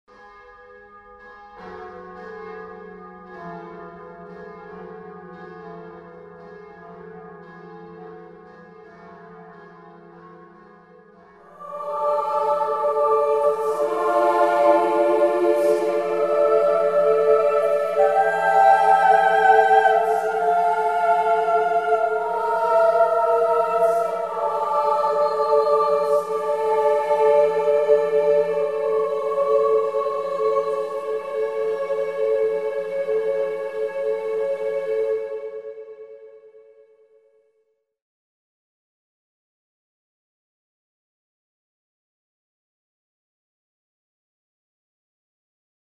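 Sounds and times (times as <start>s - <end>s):
organ choir voices: 11.4s - 37.0s
organ bells: 11.6s - 31.8s.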